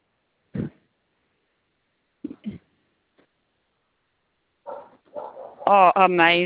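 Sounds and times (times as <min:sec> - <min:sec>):
dog barking: 0:04.7 - 0:05.7
speech: 0:05.7 - 0:06.4.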